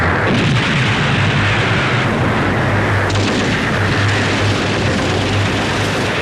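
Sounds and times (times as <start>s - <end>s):
heavy artillery booms on river banks: 0.2s - 6.1s
rapid battle gunfire on river banks: 3.1s - 6.1s.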